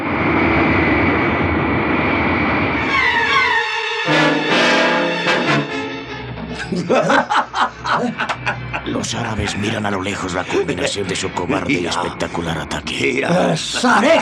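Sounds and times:
damaged airplane engine roaring as it descends with one engine on fire: 0.0s - 14.2s
laughter: 6.4s - 11.9s, 13.4s - 14.2s
speech: 9.0s - 14.2s.

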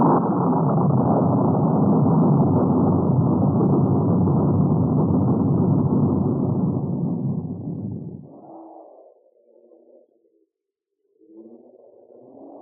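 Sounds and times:
thunder rumbling: 0.0s - 8.2s.

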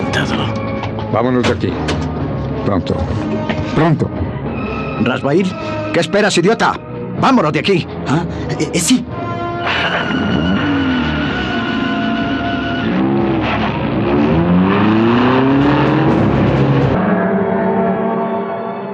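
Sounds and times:
steady rush of road noise: 0.0s - 18.9s
speech: 0.2s - 2.0s, 2.6s - 4.2s, 5.0s - 9.2s
luxury car engine roaring and revving while speeding along an Istanbul avenue: 9.7s - 18.6s.

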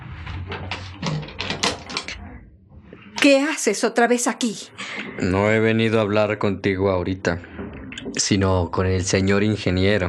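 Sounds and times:
door being opened indoors: 0.5s - 2.3s
speech: 3.3s - 7.6s, 8.2s - 10.0s.

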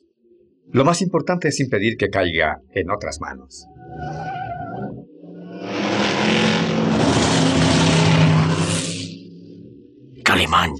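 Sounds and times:
speech: 0.7s - 4.9s, 10.4s - 10.7s
tire squeal: 3.6s - 9.2s
powerful car engines roaring and revving at speed: 5.2s - 9.3s.

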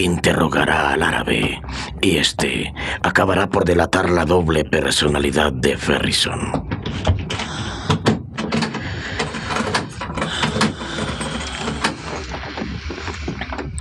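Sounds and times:
speech: 0.0s - 7.1s
door being shut and locked with a key: 6.4s - 13.7s.

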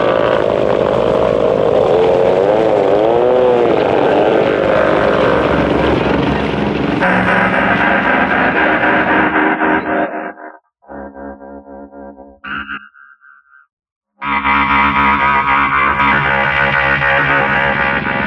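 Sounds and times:
large speedboat engine roaring on the sea: 0.0s - 10.4s, 14.3s - 18.2s.

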